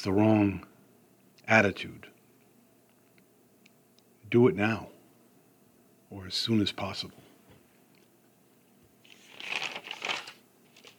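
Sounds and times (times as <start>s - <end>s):
speech: 0.0s - 0.7s, 1.5s - 2.1s, 4.3s - 4.9s, 6.1s - 7.2s
paper page turning: 9.0s - 10.9s.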